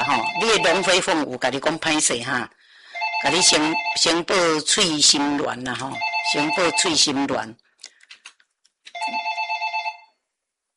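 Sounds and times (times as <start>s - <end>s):
telephone ringing with an electronic warbling trill: 0.0s - 1.2s, 2.9s - 4.4s, 5.7s - 7.3s, 9.0s - 10.2s
speech: 0.2s - 2.6s, 3.2s - 7.6s.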